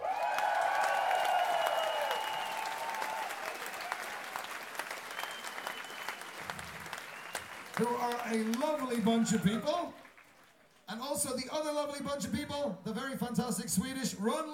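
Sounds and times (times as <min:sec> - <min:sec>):
concert crowd cheers and whoops: 0:00.0 - 0:10.6
concert crowd applauding for a band: 0:00.0 - 0:10.8
speech: 0:07.8 - 0:10.0, 0:10.9 - 0:14.5.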